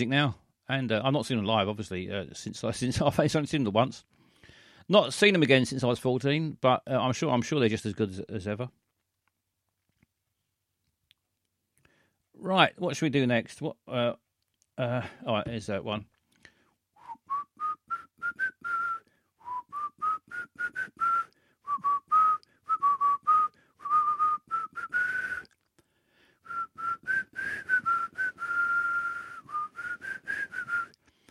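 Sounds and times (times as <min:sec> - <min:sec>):
speech: 0:00.0 - 0:04.1, 0:04.9 - 0:08.8, 0:12.4 - 0:14.2, 0:14.8 - 0:16.1
person whistling a bouncy TV theme tune: 0:17.0 - 0:25.6, 0:26.4 - 0:31.0.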